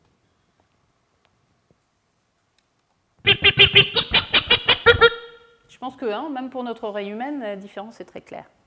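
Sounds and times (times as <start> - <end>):
loud nasal bird calls from three birds: 3.2 - 5.4
speech: 5.8 - 8.6.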